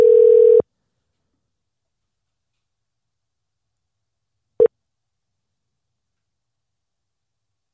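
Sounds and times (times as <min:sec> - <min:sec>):
telephone line ringing tone: 0:00.0 - 0:00.6.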